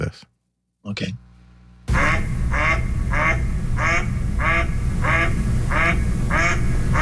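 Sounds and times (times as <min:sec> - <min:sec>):
speech: 0:00.2 - 0:01.2
mallard duck quacking loudly: 0:01.9 - 0:07.0.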